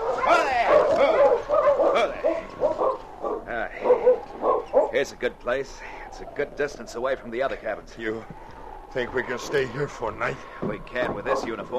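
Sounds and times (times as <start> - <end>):
sled dogs of a dog team barking and whining in thick snowfall: 0.0 - 5.1, 8.2 - 11.7
speech: 5.0 - 11.7.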